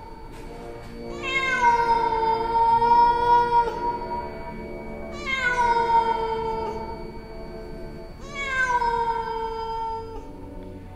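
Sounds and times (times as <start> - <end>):
child's cat-like meowing cries in the night: 1.1 - 4.4, 5.1 - 7.0, 8.2 - 10.3.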